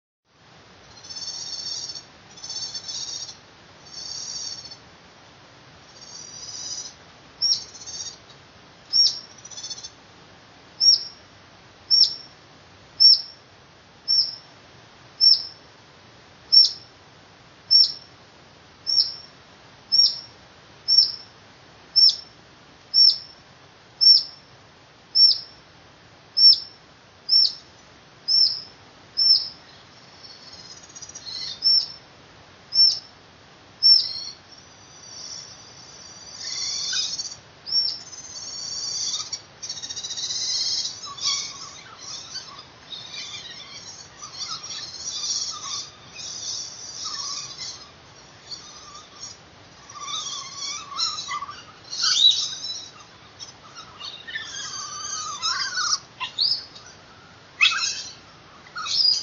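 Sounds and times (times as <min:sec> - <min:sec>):
otter calling: 0:00.9 - 0:04.8, 0:05.9 - 0:08.3, 0:08.9 - 0:10.0, 0:10.8 - 0:11.2, 0:11.9 - 0:12.3, 0:13.0 - 0:13.4, 0:14.1 - 0:14.5, 0:15.2 - 0:15.6, 0:16.5 - 0:16.9, 0:17.7 - 0:18.1, 0:18.9 - 0:19.3, 0:19.9 - 0:21.3, 0:22.0 - 0:22.3, 0:23.0 - 0:23.4, 0:24.0 - 0:24.4, 0:25.2 - 0:25.6, 0:26.4 - 0:27.7, 0:28.3 - 0:32.0, 0:32.7 - 0:33.1, 0:33.8 - 0:59.2.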